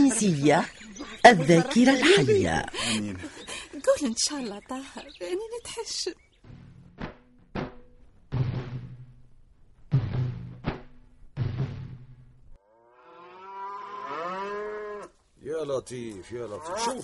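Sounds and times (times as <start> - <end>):
laughter: 0.0 - 5.3
speech: 0.2 - 6.2, 15.6 - 17.0
sharp knocks: 6.4 - 9.2, 9.9 - 12.1
grey cow mooing loudly: 12.6 - 15.2, 16.5 - 17.0.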